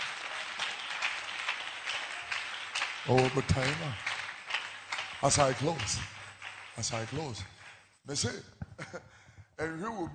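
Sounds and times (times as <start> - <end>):
congregation clapping along during a church sermon: 0.0 - 8.0
speech: 3.0 - 4.1, 5.2 - 6.2, 6.8 - 10.1.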